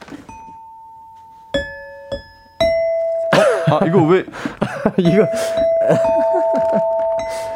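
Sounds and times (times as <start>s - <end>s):
ding-dong-daeng quiz xylophone notes struck during a live radio broadcast: 0.2s - 4.2s, 4.9s - 7.5s
man laughing: 3.3s - 7.0s
speech: 3.4s - 7.5s.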